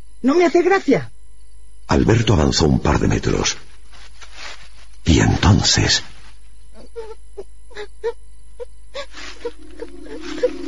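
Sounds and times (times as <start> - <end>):
speech: 0.2 - 1.1, 1.9 - 3.7, 5.1 - 6.1
child crying: 6.8 - 10.6.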